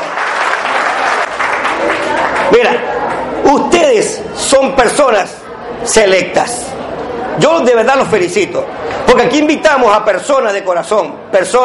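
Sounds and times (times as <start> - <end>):
audience applauding standing invited guests: 0.0 - 3.3
speech: 2.5 - 2.9, 3.5 - 6.6, 7.4 - 11.6.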